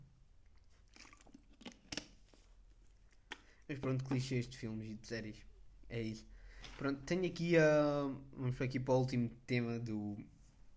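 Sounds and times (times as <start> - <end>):
person sipping water close to the mic: 0.4 - 3.7
soft wet mouth clicks: 0.5 - 2.2, 3.0 - 3.7
speech: 3.7 - 10.4.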